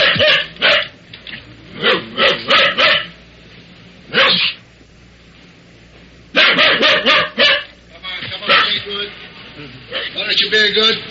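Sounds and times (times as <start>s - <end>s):
dog barking locked in a car: 0.0s - 1.0s, 1.8s - 3.2s, 4.1s - 4.6s, 6.3s - 7.8s, 8.5s - 8.8s.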